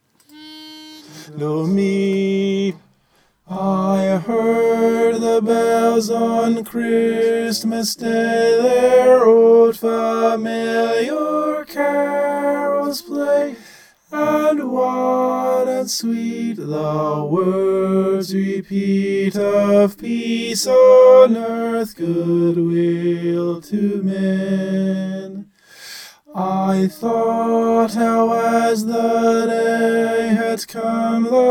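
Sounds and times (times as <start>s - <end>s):
tenor singing: 0.0s - 25.5s, 26.2s - 31.4s.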